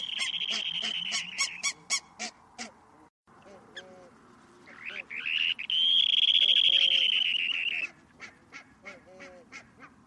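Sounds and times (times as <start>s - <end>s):
bird calls: 0.0s - 2.2s, 4.6s - 10.0s.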